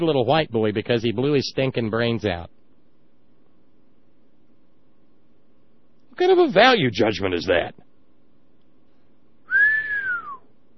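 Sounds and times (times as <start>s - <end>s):
speech: 0.0s - 2.6s, 6.2s - 7.8s
whistle: 9.5s - 10.5s.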